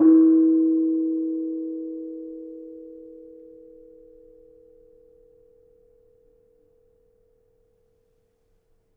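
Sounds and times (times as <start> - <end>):
kenong gamelan gong: 0.0 - 4.6.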